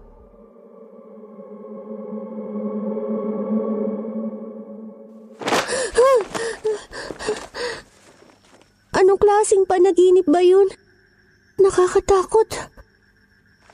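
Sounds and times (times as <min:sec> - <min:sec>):
eerie sustained tone in a dramatized horror scene: 0:00.0 - 0:05.4
person gasping for breath after waking from a nightmare: 0:05.5 - 0:08.1
speech: 0:09.3 - 0:10.8, 0:11.6 - 0:12.8.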